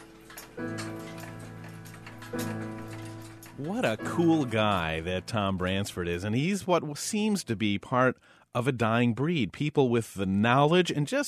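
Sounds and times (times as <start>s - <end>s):
mechanical clocks ticking in a clock repair workshop: 0.0s - 6.3s
speech: 3.6s - 11.2s.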